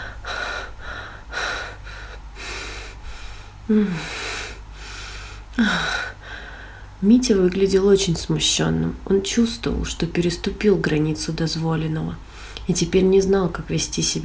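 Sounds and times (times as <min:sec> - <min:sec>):
young woman's heavy, noisy ragged breathing: 0:00.0 - 0:07.0, 0:12.2 - 0:12.7
young woman's sharp voiced gasp: 0:00.0 - 0:07.0
speech: 0:03.7 - 0:04.2, 0:05.6 - 0:05.9, 0:07.0 - 0:14.2.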